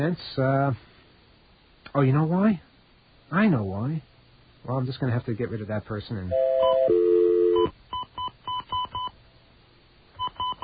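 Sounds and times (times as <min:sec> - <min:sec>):
speech: 0:00.0 - 0:00.9, 0:01.9 - 0:02.7, 0:03.3 - 0:07.0
long steady telephone tone: 0:06.3 - 0:07.7
telephone keypad dialing tones on a restricted line: 0:06.4 - 0:09.1.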